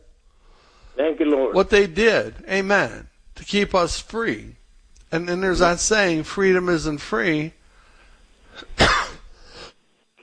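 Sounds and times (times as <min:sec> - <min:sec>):
speech: 0:01.0 - 0:07.6
person coughing harshly into the microphone: 0:08.6 - 0:09.3.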